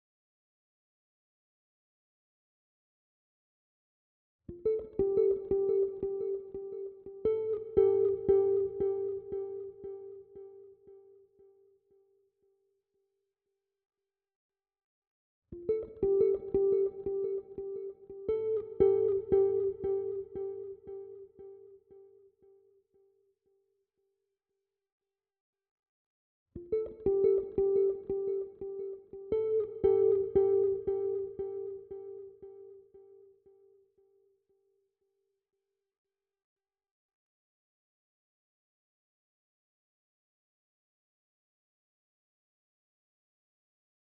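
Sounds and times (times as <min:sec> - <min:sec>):
Afrobeats guitar lead melody in D minor at 87 BPM: 0:04.6 - 0:10.6, 0:15.6 - 0:21.7, 0:26.6 - 0:33.2.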